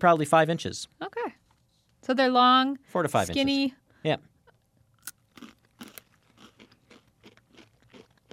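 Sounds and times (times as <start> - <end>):
speech: 0.0 - 1.2, 2.1 - 4.3
crunching a long thin pretzel stick without salt chunks: 5.0 - 8.3.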